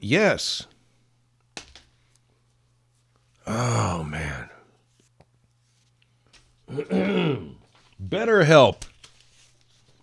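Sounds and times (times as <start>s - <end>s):
speech: 0.0s - 0.7s, 3.5s - 4.5s, 6.7s - 8.9s
person clearing throat: 6.7s - 7.6s.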